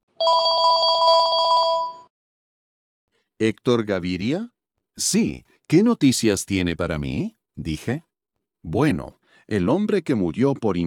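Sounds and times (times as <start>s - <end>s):
speech: 0.2s - 0.7s, 3.4s - 10.8s
telephone bell ringing in a rapid trill: 0.2s - 2.1s.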